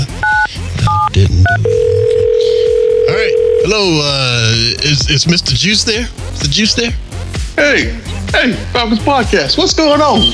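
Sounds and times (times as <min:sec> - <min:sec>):
steady unbroken phone tone: 0:00.2 - 0:04.3
speech: 0:05.0 - 0:10.3.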